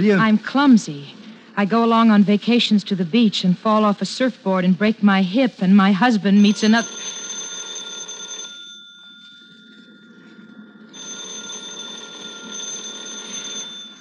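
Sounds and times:
speech: 0:00.0 - 0:07.2
telephone ringing with electric bell tone: 0:05.9 - 0:13.9.

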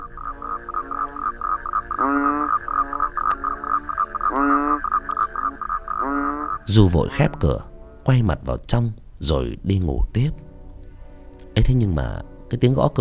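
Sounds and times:
frogs croaking in the night: 0:00.0 - 0:08.0
speech: 0:02.0 - 0:02.3, 0:06.7 - 0:10.5, 0:11.6 - 0:12.9.

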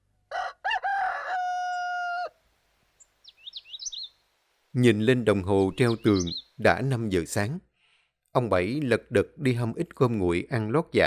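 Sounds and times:
rooster crowing at dawn: 0:00.3 - 0:02.4
faint high bird chirps: 0:03.0 - 0:04.3, 0:05.6 - 0:06.6
speech: 0:04.7 - 0:07.7, 0:08.4 - 0:11.0.

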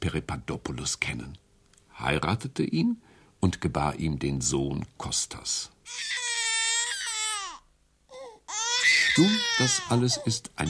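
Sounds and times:
speech: 0:00.1 - 0:01.4, 0:02.0 - 0:06.4, 0:09.2 - 0:10.6
baby crying loudly: 0:05.9 - 0:10.6.

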